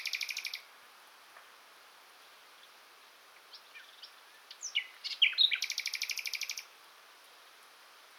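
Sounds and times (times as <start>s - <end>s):
common nightingale Luscinia megarhynchos singing: 0.0s - 0.7s, 3.4s - 6.7s.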